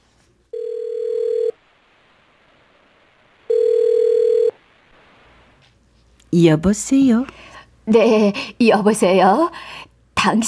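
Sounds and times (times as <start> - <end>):
mobile phone ringback tone: 0.5 - 1.6, 3.5 - 4.6
speech: 6.4 - 10.4.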